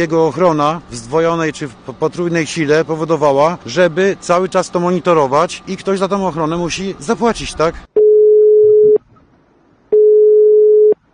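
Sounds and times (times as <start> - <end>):
speech: 0.0 - 7.9
unanswered telephone call tone: 8.0 - 9.0, 9.9 - 11.0.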